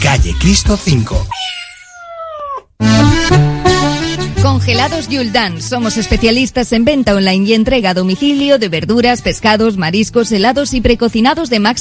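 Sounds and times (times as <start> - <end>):
speech: 0.2 - 1.6, 4.7 - 11.8
cat meowing in a cat café: 1.3 - 2.8
loud music: 2.8 - 6.2.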